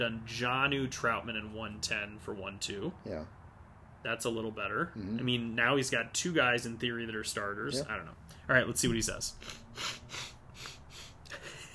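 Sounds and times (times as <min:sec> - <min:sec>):
speech: 0:00.0 - 0:03.4, 0:04.0 - 0:10.3
nasal sniffles: 0:09.4 - 0:11.5.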